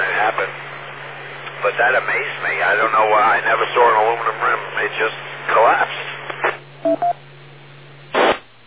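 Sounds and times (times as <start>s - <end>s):
faint steady hum: 0.0s - 8.6s
speech: 1.6s - 6.0s
radio static: 1.7s - 6.6s
electronic phone tones: 6.8s - 7.2s.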